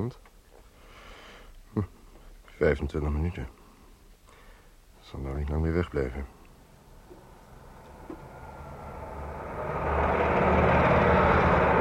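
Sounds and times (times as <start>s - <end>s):
speech: 0.0s - 0.3s, 1.8s - 2.0s, 2.6s - 3.6s, 5.1s - 6.4s
heavy truck driving past with engine rumble and road noise: 6.5s - 11.7s.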